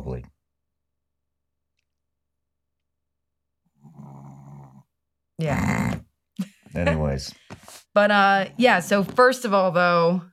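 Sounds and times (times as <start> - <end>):
dog snoring: 3.7 - 4.9
speech: 5.4 - 6.0, 6.8 - 10.3.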